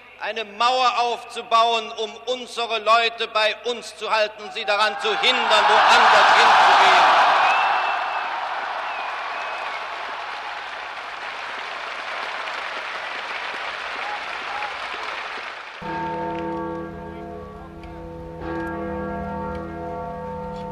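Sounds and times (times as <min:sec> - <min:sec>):
speech: 0:00.2 - 0:07.1
large crowd applauding after a political speech: 0:05.4 - 0:17.0.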